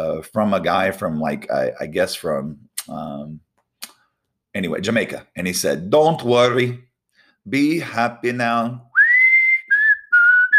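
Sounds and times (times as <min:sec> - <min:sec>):
speech: 0:00.1 - 0:03.5, 0:04.5 - 0:08.9
person whistling a song's tune: 0:08.9 - 0:10.5.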